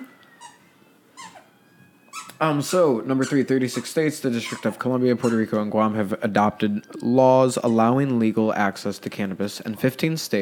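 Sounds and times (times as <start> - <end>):
dog squeaking a squeaker toy: 0.0 - 0.6, 1.2 - 5.6, 7.6 - 8.0
speech: 2.4 - 10.4.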